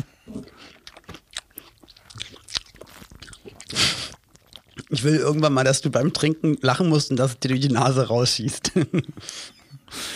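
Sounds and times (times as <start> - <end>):
person chewing melon with crunchy wet bites: 0.0 - 5.2
speech: 4.9 - 10.0.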